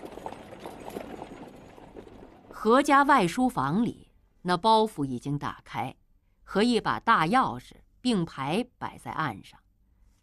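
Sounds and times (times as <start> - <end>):
hooves of a horse-drawn carriage clip-clopping: 0.0 - 2.5
speech: 2.6 - 9.6.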